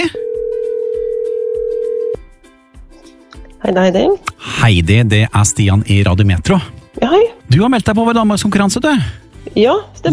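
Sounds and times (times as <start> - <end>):
ringback tone of an outgoing phone call: 0.0 - 2.2
rhythmic music: 0.0 - 10.1
speech: 3.6 - 10.1.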